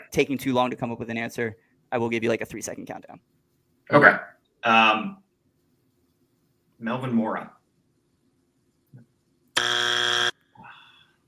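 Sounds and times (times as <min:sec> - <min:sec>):
speech: 0:00.1 - 0:05.2, 0:06.8 - 0:07.6
wrong-answer game buzzer: 0:09.6 - 0:10.4.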